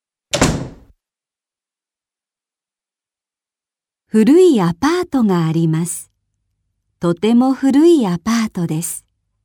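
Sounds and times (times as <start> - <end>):
door swinging shut with a solid thud and short rattle: 0.3 - 0.9
speech: 4.1 - 6.1, 7.0 - 9.0.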